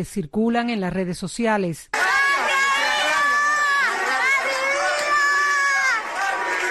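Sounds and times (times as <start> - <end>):
speech: 0.0 - 2.0
crowd of protesters chanting slogans in the street at night: 1.9 - 6.7.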